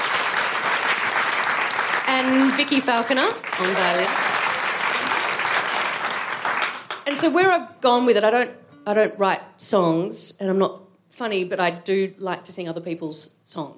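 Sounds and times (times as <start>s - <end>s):
crowd applause: 0.0s - 7.1s
speech: 2.2s - 4.2s, 7.1s - 13.7s.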